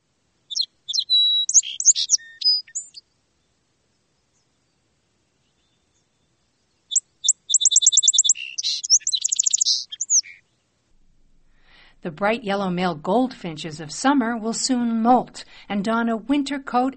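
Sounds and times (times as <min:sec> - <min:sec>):
song sparrow singing in a marsh: 0:00.5 - 0:03.1, 0:05.4 - 0:10.6
speech: 0:12.0 - 0:16.9.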